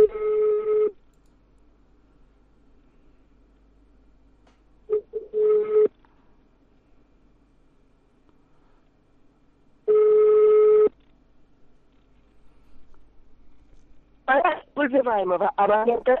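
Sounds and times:
telephone ringback tones while a number is redialed: 0:00.0 - 0:00.9, 0:04.9 - 0:05.9, 0:09.9 - 0:10.9
person speaking: 0:14.3 - 0:16.1.

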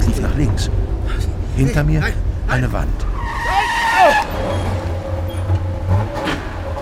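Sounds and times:
car engine accelerating with a low steady drone: 0:00.0 - 0:06.7
speech: 0:00.2 - 0:03.1
car tyres squealing while swerving: 0:03.0 - 0:06.7.

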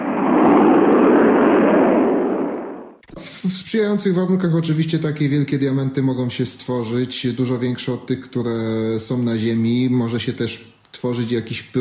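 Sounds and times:
deep rocket engine ignition and launch roar: 0:00.0 - 0:03.3
speech: 0:03.5 - 0:11.7.

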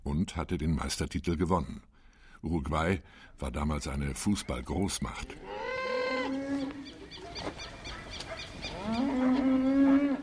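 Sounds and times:
speech: 0:00.2 - 0:05.8
cattle mooing on open pasture in Uruguay: 0:05.4 - 0:06.9, 0:08.7 - 0:10.2.

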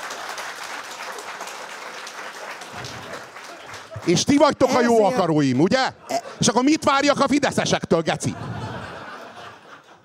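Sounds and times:
audience applause: 0:00.0 - 0:05.1
laughter: 0:02.8 - 0:10.0
speech: 0:04.0 - 0:08.5.

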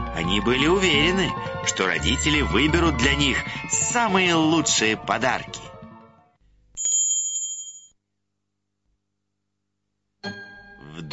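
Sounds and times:
speech: 0:00.2 - 0:05.7
small bell ringing: 0:06.8 - 0:08.0.

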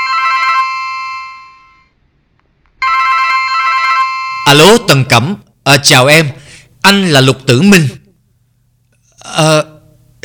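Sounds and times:
telephone ringing with a bright electronic tone: 0:00.0 - 0:01.9, 0:02.8 - 0:04.8
speech: 0:04.5 - 0:08.0, 0:09.4 - 0:10.2.

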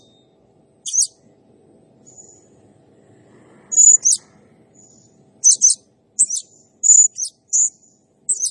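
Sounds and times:
faint low murmur: 0:00.0 - 0:08.5
Blue-crowned hanging parrot song of shrill paired squeaks and buzzy chirps: 0:00.9 - 0:01.2, 0:03.7 - 0:04.2, 0:05.4 - 0:08.5.

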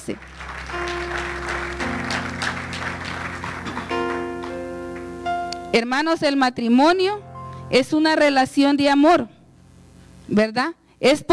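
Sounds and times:
church congregation applauding: 0:00.0 - 0:05.7
sustained keyboard or organ chords: 0:00.0 - 0:10.2
speech: 0:00.1 - 0:00.3, 0:05.8 - 0:09.4, 0:10.3 - 0:11.3.

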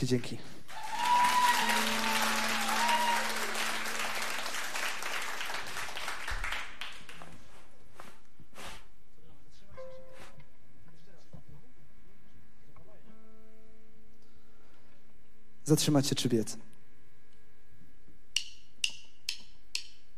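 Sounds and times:
speech: 0:00.0 - 0:00.6, 0:15.7 - 0:16.8
concert audience applause: 0:00.7 - 0:07.3.

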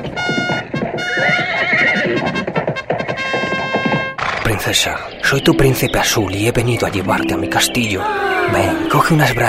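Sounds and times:
clip-clopping horse hoofbeats: 0:00.0 - 0:04.6
horse whinnying with shaky wavering pitch: 0:01.0 - 0:04.5
speech: 0:04.7 - 0:09.4.

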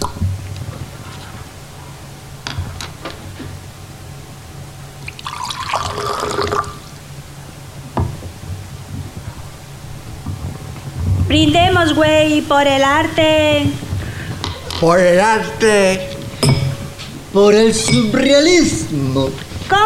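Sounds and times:
steady low hum: 0:00.0 - 0:19.8
champagne bubbling and fizzing as it is poured: 0:05.0 - 0:07.0
speech: 0:11.3 - 0:13.8, 0:14.8 - 0:16.1, 0:17.3 - 0:19.8.

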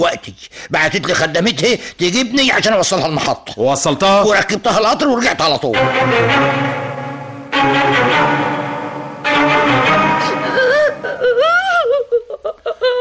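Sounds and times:
speech: 0:00.0 - 0:06.9, 0:07.6 - 0:08.6
loud steady harmonic passage: 0:05.7 - 0:11.4
woman crying in high wavering sobbing wails: 0:10.4 - 0:12.9.

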